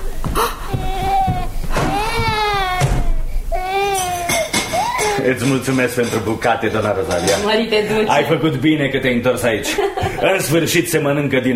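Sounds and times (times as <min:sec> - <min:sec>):
baby crying: 0:00.4 - 0:05.4
speech: 0:05.2 - 0:11.5.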